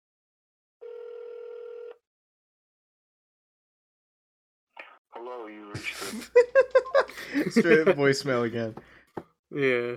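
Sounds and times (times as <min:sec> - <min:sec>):
faint ringback tone on an outgoing telephone call: 0:00.8 - 0:02.0
speech: 0:05.2 - 0:08.9, 0:09.5 - 0:09.9
laughter: 0:05.7 - 0:08.3.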